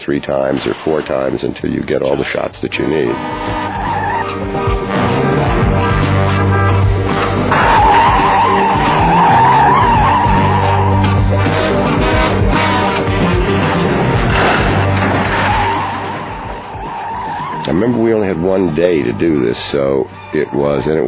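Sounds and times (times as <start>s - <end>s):
speech: 0.0s - 3.9s, 17.7s - 21.0s
roaring car engines of racing vehicles in a film chase: 1.4s - 21.0s
tires squealing and skidding in a film chase on a New York street: 2.8s - 21.0s.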